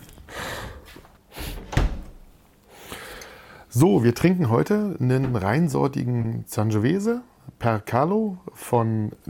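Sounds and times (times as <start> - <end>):
door swinging and shutting with a solid thump: 1.5 - 2.4
speech: 3.7 - 9.2.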